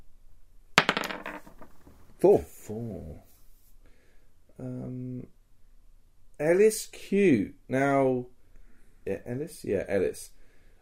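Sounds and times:
twelve-sided die clattering onto a hard tabletop: 0.8s - 2.0s
speech: 2.2s - 3.3s, 4.6s - 5.4s, 6.4s - 8.3s, 9.0s - 10.4s.

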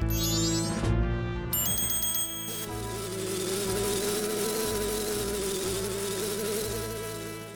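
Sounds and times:
bright chiming flourish: 0.0s - 0.9s, 1.6s - 3.4s
wasp buzzing: 2.5s - 7.5s.

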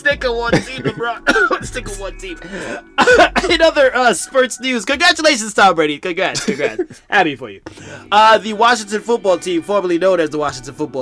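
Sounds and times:
speech: 0.0s - 11.0s
loud exaggerated throat clearing: 0.5s - 1.8s, 2.6s - 3.8s.

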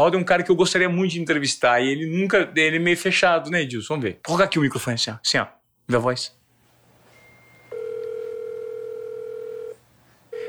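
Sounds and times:
speech: 0.0s - 6.4s
outgoing phone call ringing tone: 6.7s - 10.4s.

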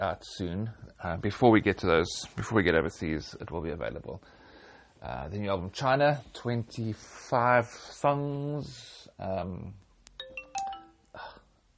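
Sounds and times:
speech: 0.0s - 4.4s, 5.0s - 9.8s
electronic email notification chime on a phone: 10.2s - 11.2s.

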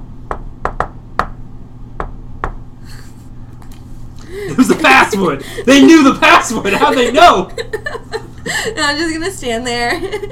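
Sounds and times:
low steady hum: 0.0s - 10.3s
sharp knocks on a door: 0.3s - 1.4s, 2.0s - 2.6s
laughter: 4.2s - 10.3s
speech: 4.3s - 10.3s.

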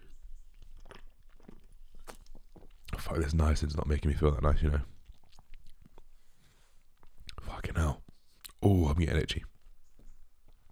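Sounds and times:
wet slurps and gulps: 0.0s - 8.6s
person sipping a drink: 0.1s - 3.0s, 4.9s - 7.5s
speech: 3.1s - 5.0s, 9.0s - 9.6s.

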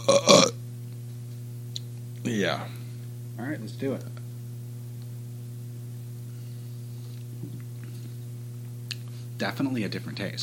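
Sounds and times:
person burping: 0.0s - 0.6s
low steady hum: 0.0s - 10.4s
speech: 2.2s - 2.8s, 3.4s - 4.2s, 9.4s - 10.4s.

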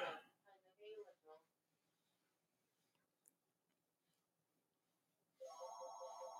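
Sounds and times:
telephone ringing with a bright electronic tone: 5.4s - 6.3s.

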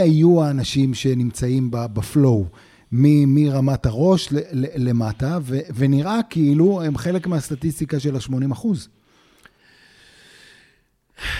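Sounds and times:
speech: 0.0s - 9.0s, 11.2s - 11.3s
slow deep breath: 2.5s - 2.9s, 9.0s - 11.3s.

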